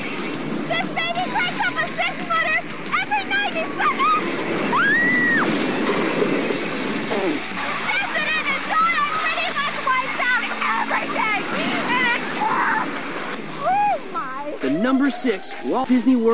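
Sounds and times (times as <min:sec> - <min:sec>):
water splashing and sloshing at a busy wave pool: 0:00.0 - 0:16.3
crowd of voices shouting and squealing: 0:03.3 - 0:05.6, 0:07.1 - 0:16.3
speech: 0:14.8 - 0:16.3.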